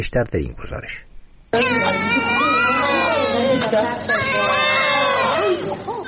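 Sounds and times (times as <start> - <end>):
speech: 0.0 - 2.4, 3.4 - 4.6
newborn babies crying: 1.5 - 6.0.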